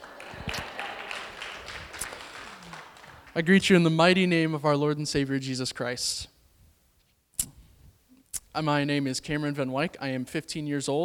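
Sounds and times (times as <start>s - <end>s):
audience clapping: 0.0s - 3.8s
speech: 3.4s - 6.3s, 8.6s - 11.0s.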